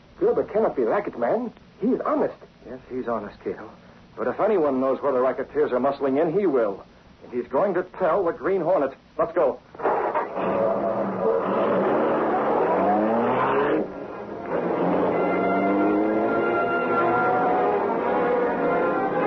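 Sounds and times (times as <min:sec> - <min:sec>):
speech: 0:00.2 - 0:09.9
car engine accelerating hard through city streets at night: 0:09.8 - 0:19.2.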